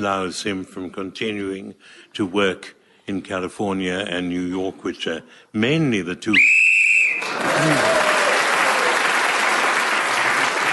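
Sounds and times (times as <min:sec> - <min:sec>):
speech: 0:00.0 - 0:06.6, 0:07.3 - 0:08.0
short shrill whistle blown to end a round: 0:06.3 - 0:07.3
studio audience applause: 0:07.0 - 0:10.7.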